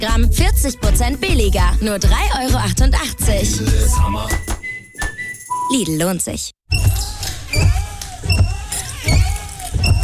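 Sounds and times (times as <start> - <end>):
speech: 0.0 - 4.6, 5.7 - 8.5
worn car windshield wipers squeaking across the glass: 6.7 - 10.0.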